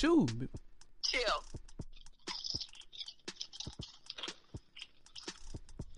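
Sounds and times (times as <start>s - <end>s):
speech: 0.0s - 1.6s
chewing crunchy chips: 2.0s - 5.9s.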